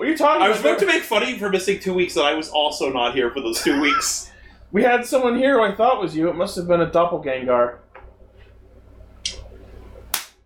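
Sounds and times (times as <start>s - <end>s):
low hum: 0.0s - 10.4s
speech: 0.1s - 7.8s
sharp slaps: 10.1s - 10.4s.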